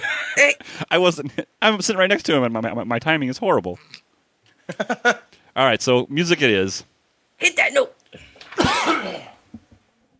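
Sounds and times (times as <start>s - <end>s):
speech: 0.4s - 4.0s, 4.7s - 9.3s
person coughing harshly: 8.2s - 9.4s.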